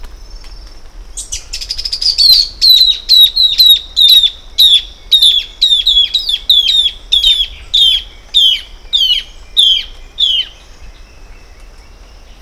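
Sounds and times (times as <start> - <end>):
Phacellodomus erythrophthalmus sounds: 0.2 - 12.4.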